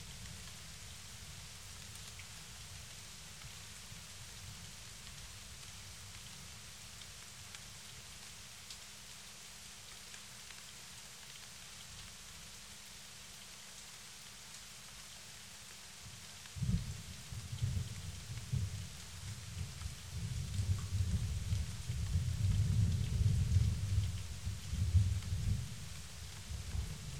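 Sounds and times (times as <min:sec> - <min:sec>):
light rain: 0:00.0 - 0:27.1
thunder: 0:20.4 - 0:27.1.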